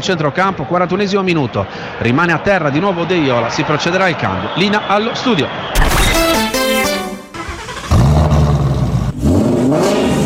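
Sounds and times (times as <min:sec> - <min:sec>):
speech: 0:00.0 - 0:06.2
Ford car engine revving hard: 0:06.8 - 0:10.2.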